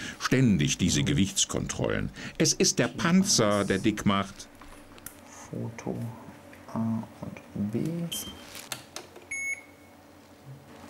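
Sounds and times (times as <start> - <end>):
speech: 0.3 - 4.5, 5.5 - 8.6
short electronic mobile phone beep: 9.3 - 9.8.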